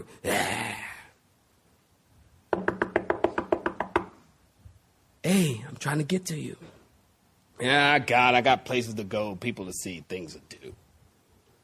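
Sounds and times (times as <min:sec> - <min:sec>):
speech: 0:00.0 - 0:00.6, 0:05.2 - 0:06.7, 0:07.6 - 0:10.8
sharp knocking: 0:02.5 - 0:04.2.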